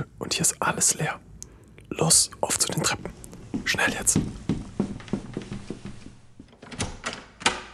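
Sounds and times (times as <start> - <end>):
speech: 0.0 - 1.3, 1.9 - 4.4
door scraping and creaking: 4.1 - 7.7
door opening with mechanical clicks and rattles: 5.0 - 7.7.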